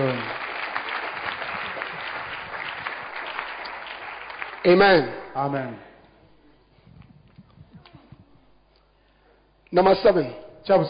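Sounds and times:
speech: 0:00.0 - 0:00.4, 0:04.6 - 0:05.9, 0:09.7 - 0:10.8
congregation clapping hands at a church service: 0:00.0 - 0:05.9.

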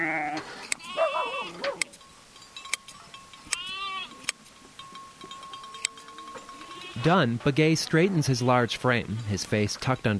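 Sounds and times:
ewe bleating during shearing: 0:00.0 - 0:01.6, 0:03.5 - 0:04.3, 0:06.5 - 0:07.2
speech: 0:07.0 - 0:10.1.

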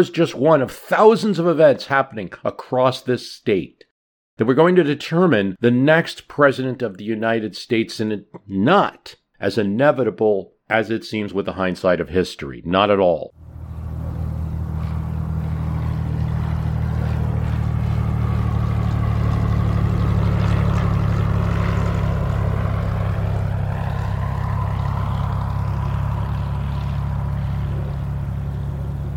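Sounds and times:
speech: 0:00.0 - 0:03.8, 0:04.4 - 0:13.4
faint shifting whine from small propeller airplane: 0:13.4 - 0:29.1
small chartered propeller airplane engine droning while taxiing: 0:13.4 - 0:29.1.

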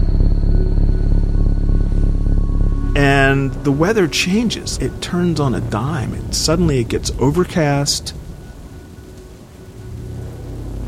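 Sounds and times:
deep rolling rumble of thunder: 0:00.0 - 0:10.8
steady rain hissing: 0:00.0 - 0:10.8
speech: 0:03.0 - 0:08.2
rising wind: 0:03.5 - 0:10.8.

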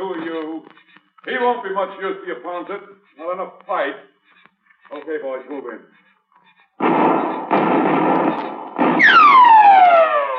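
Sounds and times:
speech: 0:01.4 - 0:04.1, 0:04.9 - 0:06.0
gunshots in a radio drama: 0:06.8 - 0:10.3.

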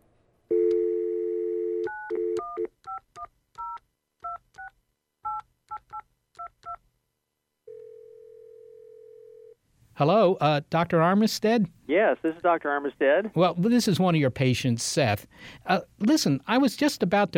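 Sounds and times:
telephone dial tone: 0:00.5 - 0:03.0, 0:07.7 - 0:09.6
speech: 0:10.0 - 0:17.3.

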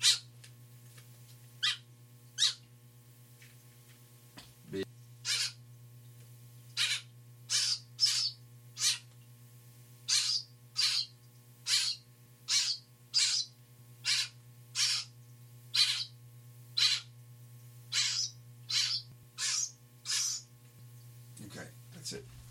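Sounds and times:
young bird begging calls while being hand-fed: 0:00.0 - 0:00.3, 0:01.6 - 0:01.8, 0:02.4 - 0:02.6, 0:05.2 - 0:05.6, 0:06.8 - 0:09.0, 0:10.1 - 0:11.1, 0:11.7 - 0:15.1, 0:15.7 - 0:16.2, 0:16.8 - 0:17.1, 0:17.9 - 0:20.5
steady low electrical hum: 0:00.0 - 0:22.5.

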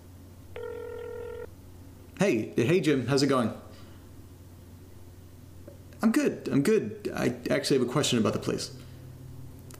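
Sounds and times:
faint low hum: 0:00.0 - 0:09.7
telephone ringback tone down the line: 0:00.5 - 0:01.5
speech: 0:02.2 - 0:03.6, 0:06.1 - 0:08.8.

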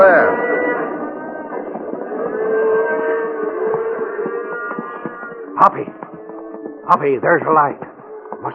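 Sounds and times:
herd of cattle mooing: 0:00.0 - 0:06.9
speech: 0:05.6 - 0:05.9, 0:06.9 - 0:08.5.

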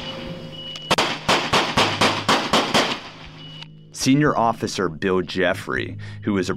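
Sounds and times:
fully automatic gunfire from a gun with an illegal modification device: 0:00.9 - 0:03.2
speech: 0:04.0 - 0:06.5.

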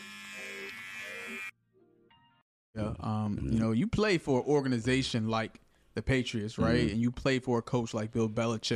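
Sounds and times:
electric grooming trimmer buzzing: 0:00.0 - 0:01.6
speech: 0:02.8 - 0:08.7.

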